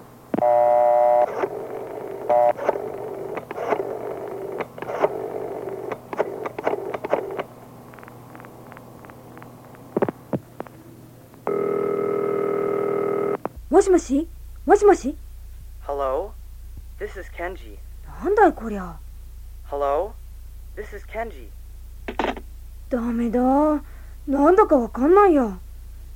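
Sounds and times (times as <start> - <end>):
sustained telephone ringing tone: 0.3 - 7.4, 11.5 - 13.4
steady telephone dial tone: 0.3 - 8.7, 11.5 - 13.4
speech: 13.8 - 15.2, 17.1 - 19.0, 19.7 - 20.2, 20.8 - 21.6, 22.9 - 25.6.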